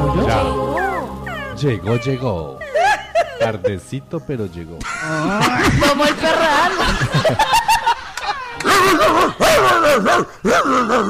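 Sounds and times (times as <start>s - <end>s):
speech: 0.2s - 0.8s, 1.6s - 2.7s, 3.4s - 7.7s, 9.0s - 11.0s
dog yipping, barking and whining: 0.7s - 3.4s
laughter: 2.6s - 3.8s, 4.8s - 11.0s.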